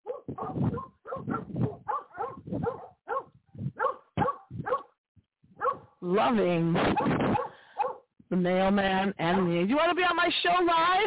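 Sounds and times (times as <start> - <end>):
neighborhood dogs barking at a person walking down the street: 0.0 - 4.9, 5.6 - 6.0, 6.9 - 8.0
speech: 6.1 - 7.5, 8.3 - 11.0.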